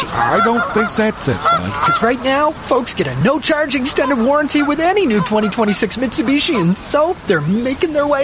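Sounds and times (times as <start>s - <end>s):
geese honking during migration: 0.0s - 8.2s
speech: 0.0s - 8.2s.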